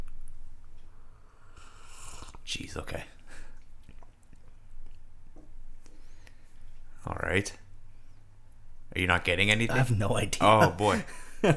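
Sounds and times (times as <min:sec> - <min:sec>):
soft mouth noises: 0:00.8 - 0:02.5, 0:03.4 - 0:05.1
person slurping a drink during a tasting: 0:01.5 - 0:02.4
speech: 0:02.5 - 0:03.2, 0:07.0 - 0:07.6, 0:09.0 - 0:11.5.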